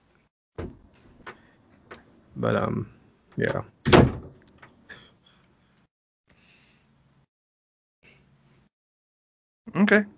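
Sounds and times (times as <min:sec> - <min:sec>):
door slamming shut: 0:00.6 - 0:01.4, 0:03.5 - 0:04.7
speech: 0:02.4 - 0:03.8, 0:09.8 - 0:10.1.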